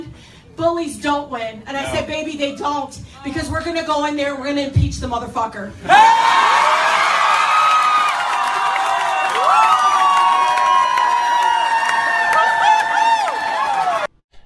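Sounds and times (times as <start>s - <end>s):
speech: 0.6s - 6.2s
large crowd cheering with whoops and yells: 5.9s - 14.2s.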